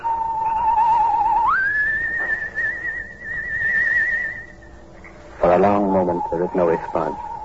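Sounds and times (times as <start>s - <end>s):
soft sustained human whistle signal at night: 0.0s - 4.8s
speech: 5.5s - 7.3s.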